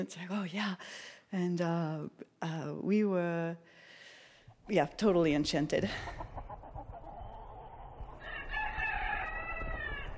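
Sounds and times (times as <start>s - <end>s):
speech: 0.0s - 3.8s, 4.7s - 6.6s
rooster crowing: 8.2s - 10.1s.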